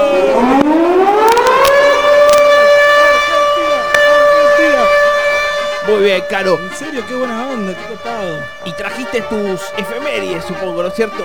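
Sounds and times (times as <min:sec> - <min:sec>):
siren sound effect wailing: 0:00.0 - 0:11.2
speech: 0:06.1 - 0:11.2.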